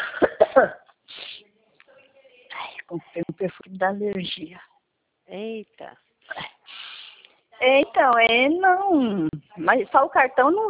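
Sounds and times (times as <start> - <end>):
harsh coughing: 0.0 - 0.9
speech: 0.6 - 0.8, 2.9 - 4.7, 5.3 - 6.4, 7.6 - 10.6.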